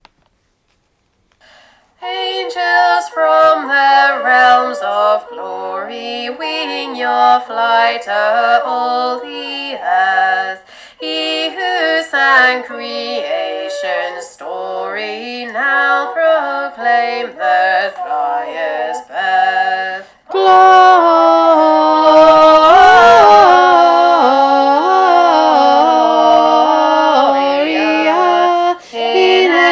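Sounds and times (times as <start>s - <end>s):
SATB Christmas choir singing a verse: 2.0s - 29.7s.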